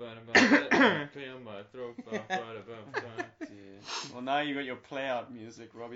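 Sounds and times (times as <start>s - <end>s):
soft voiced sounds: 0.0s - 5.9s
throat clearing: 0.4s - 1.1s
laughter: 1.8s - 3.8s
speech: 3.8s - 5.9s.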